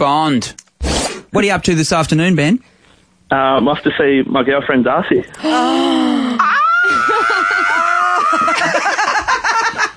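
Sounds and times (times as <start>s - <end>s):
speech: 0.0s - 2.7s, 3.3s - 6.2s
man squealing in a high voice: 5.4s - 8.6s
laughter: 6.5s - 9.9s.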